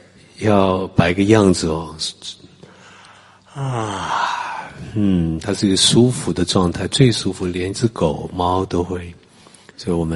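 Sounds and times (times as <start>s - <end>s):
speech: 0.4s - 2.4s, 3.6s - 4.3s, 5.0s - 9.2s, 9.8s - 10.1s
people yawning together: 3.5s - 5.2s.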